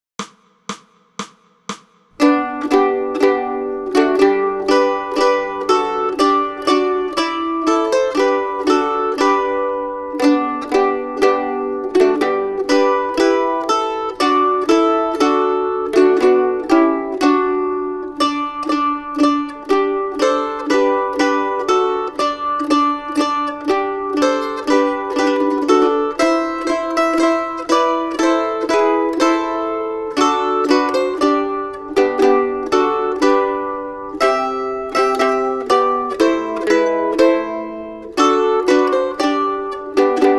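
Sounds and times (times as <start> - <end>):
mandolin playing a Christmas carol: 2.2 - 40.3.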